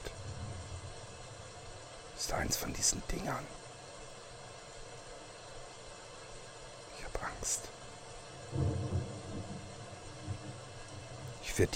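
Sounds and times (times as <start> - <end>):
deep low rumbles: 0.0 - 1.7, 8.4 - 11.5
heavy rain: 0.0 - 11.7
speech: 2.2 - 3.6, 7.4 - 7.8, 11.6 - 11.7.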